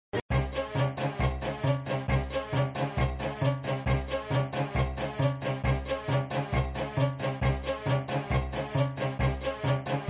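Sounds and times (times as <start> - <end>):
looping pinball game music: 0.3 - 10.0.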